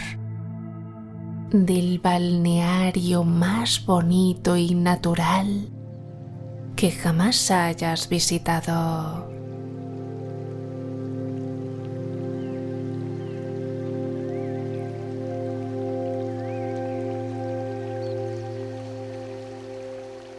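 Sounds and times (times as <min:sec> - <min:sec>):
speech: 0:01.5 - 0:05.8, 0:06.8 - 0:09.4
flowing water: 0:05.7 - 0:20.3.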